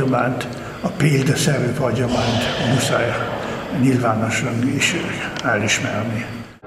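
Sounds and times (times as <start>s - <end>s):
several large cathedral church bells pealing together: 0.0s - 6.0s
speech: 0.1s - 6.4s.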